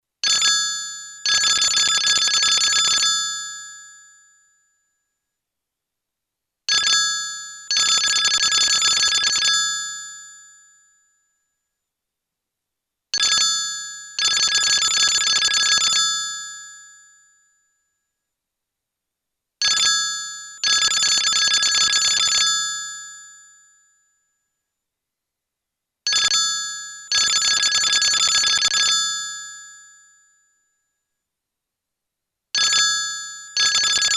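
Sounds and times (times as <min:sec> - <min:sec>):
old Arubian phone: 0:00.2 - 0:04.1, 0:06.7 - 0:11.0, 0:13.1 - 0:17.6, 0:19.6 - 0:23.7, 0:26.1 - 0:29.9, 0:32.6 - 0:34.1.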